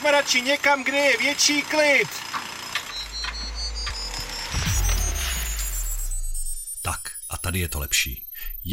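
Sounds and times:
speech: 0.0s - 2.4s, 7.5s - 8.7s
synthetic teleport effect shimmering high tones sweeping upward: 2.9s - 8.7s.

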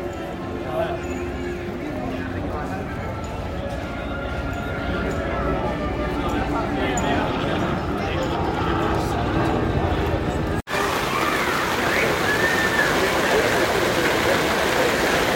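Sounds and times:
faint indistinct voices murmuring: 0.0s - 15.3s
heavy rain downpour heard from under an umbrella at the American Pavilion: 10.7s - 15.3s.

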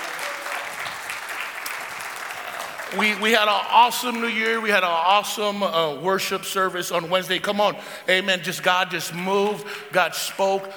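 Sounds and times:
audience applauding: 0.0s - 3.7s
speech: 2.9s - 10.7s.

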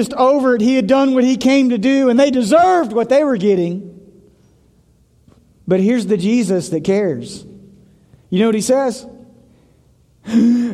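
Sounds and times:
speech: 0.0s - 3.9s, 5.7s - 7.5s, 8.3s - 9.2s, 10.2s - 10.7s
man imitating gasping for air: 10.2s - 10.7s.

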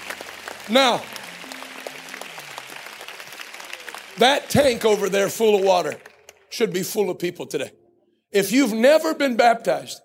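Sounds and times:
applause of many hands clapping in a church service: 0.0s - 6.9s
speech: 0.7s - 1.2s, 4.2s - 10.0s.

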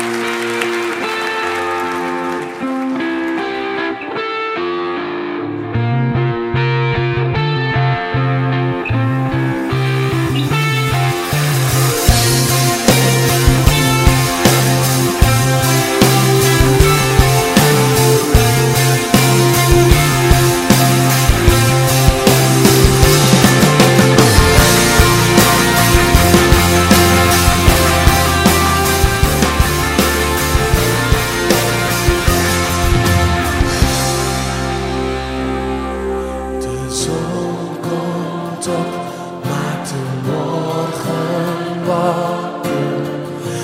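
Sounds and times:
drums in a recorded worship song: 0.0s - 3.8s, 7.4s - 43.6s
distorted guitars in a recorded worship song: 0.0s - 43.6s
cymbals in a recorded worship song: 9.8s - 37.2s.

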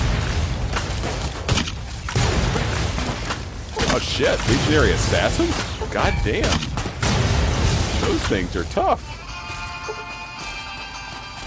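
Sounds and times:
grenade explosions in a video game: 0.0s - 9.2s
speech: 4.0s - 6.7s, 8.1s - 9.2s.

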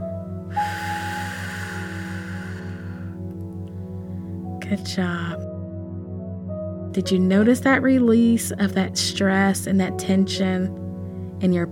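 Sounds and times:
soft sustained drone: 0.0s - 3.4s
deep breath in and strong exhale from a guided relaxation breathing exercise: 0.5s - 3.3s
speech: 4.7s - 5.4s, 7.0s - 10.8s, 11.4s - 11.7s.

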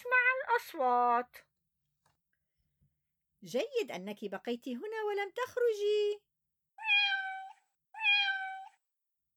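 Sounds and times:
speech: 0.6s - 1.5s, 3.4s - 6.9s
cat meowing: 6.8s - 8.8s.

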